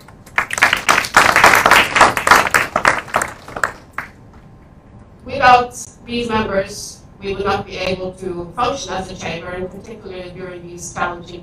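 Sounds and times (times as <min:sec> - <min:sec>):
crowd applauding: 0:00.0 - 0:04.2
speech: 0:05.5 - 0:11.4.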